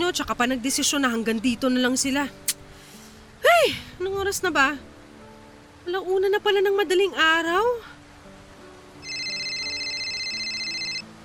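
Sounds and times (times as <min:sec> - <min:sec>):
speech: 0:00.1 - 0:02.6, 0:03.6 - 0:04.9, 0:05.8 - 0:08.0
phone ringing with an incoming call: 0:09.0 - 0:11.1.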